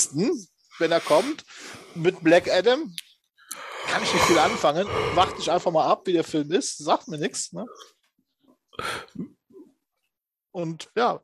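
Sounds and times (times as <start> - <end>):
speech: 0.0 - 8.0, 8.8 - 9.4, 10.6 - 11.2
person yawning with squeaky whining notes: 3.6 - 5.7.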